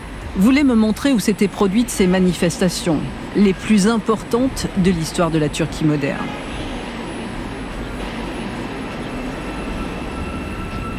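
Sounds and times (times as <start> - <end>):
metro train rumbling in an underground station: 0.0 - 10.9
speech: 0.4 - 6.5
high-pitched whine from the rails: 6.2 - 10.9.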